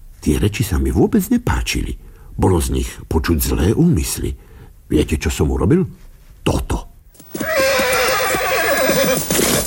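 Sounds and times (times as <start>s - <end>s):
speech: 0.2s - 6.7s
horse whinnying while rearing up: 7.2s - 9.6s.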